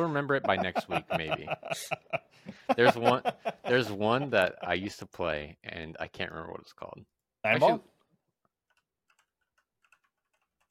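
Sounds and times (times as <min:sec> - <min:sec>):
speech: 0:00.0 - 0:07.9
laughter: 0:00.2 - 0:04.6
keyboard typing a search: 0:08.6 - 0:10.6.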